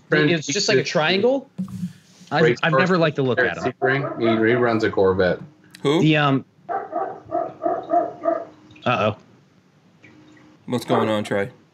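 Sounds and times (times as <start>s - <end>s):
speech: 0.1s - 6.5s, 8.8s - 9.2s, 10.7s - 11.6s
dog barking: 3.7s - 4.7s, 6.7s - 8.5s, 10.9s - 11.2s.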